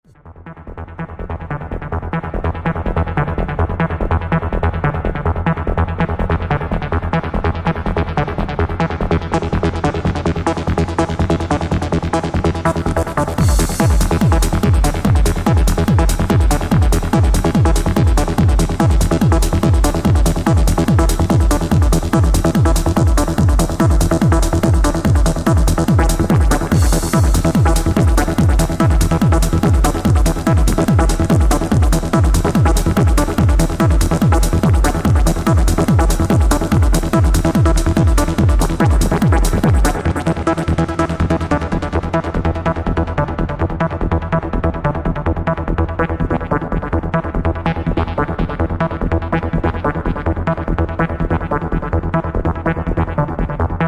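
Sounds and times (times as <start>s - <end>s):
Korg 707 synthesizer sounds with external effects: 0.2s - 53.8s.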